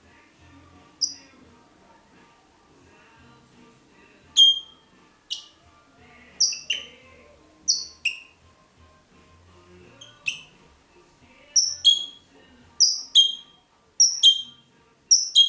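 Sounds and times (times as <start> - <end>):
red-rumped parrot Psephotus haematonotus chirps: 1.0 - 1.3, 4.4 - 5.6, 6.4 - 7.0, 7.7 - 8.4, 10.0 - 10.5, 11.6 - 12.2, 12.8 - 15.4.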